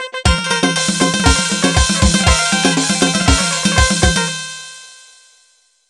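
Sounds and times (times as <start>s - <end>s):
Cifteteli dance music intro: 0.3s - 4.7s.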